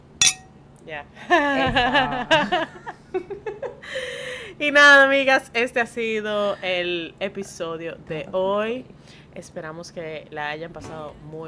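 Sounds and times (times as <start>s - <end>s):
wine glasses clinking in a toast: 0.2s - 0.5s
speech: 0.9s - 3.4s, 4.6s - 11.4s.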